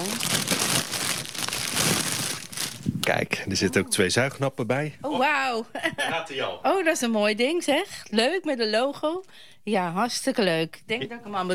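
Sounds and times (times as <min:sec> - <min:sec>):
plastic foil crinkling as an item with two suction cups is unwrapped: 0:00.0 - 0:02.9
speech: 0:03.1 - 0:11.5.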